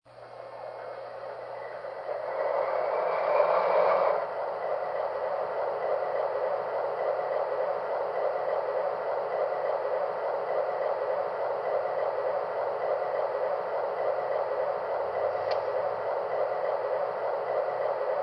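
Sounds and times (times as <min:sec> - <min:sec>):
Dash 8 turboprop airplane: 0:00.1 - 0:18.2.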